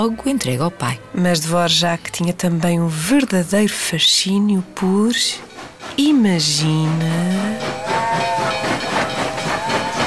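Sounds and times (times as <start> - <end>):
speech: 0.0 - 8.6
steam locomotive steam hissing and chuffing: 4.8 - 10.0
steam locomotive whistle blast: 6.6 - 10.0.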